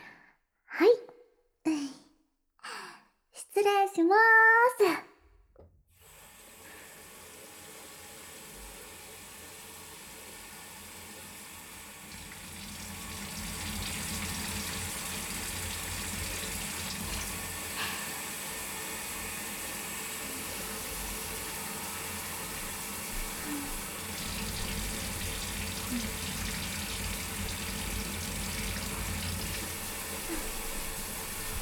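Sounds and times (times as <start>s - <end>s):
speech: 3.6s - 5.0s
water running while rinsing hair: 6.0s - 31.5s.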